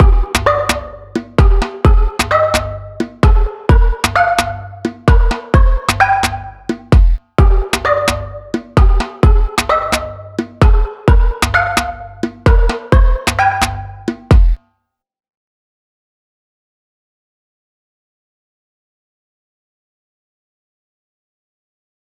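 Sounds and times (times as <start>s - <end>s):
beat: 0.0s - 14.6s.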